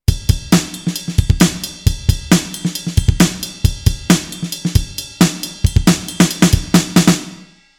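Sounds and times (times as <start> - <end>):
drums in a cave: 0.0 - 7.7.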